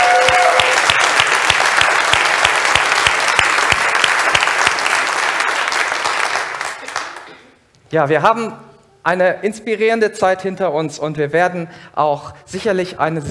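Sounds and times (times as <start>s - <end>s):
audience applauding at a church service: 0.0s - 7.3s
speech: 7.9s - 13.2s.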